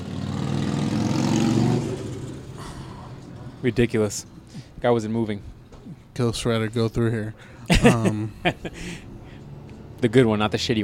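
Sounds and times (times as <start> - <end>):
motorcycle engine revving during motorcycle week: 0.0 - 3.6
speech: 3.6 - 5.6, 6.2 - 9.1, 10.0 - 10.8
laughter: 7.7 - 9.0.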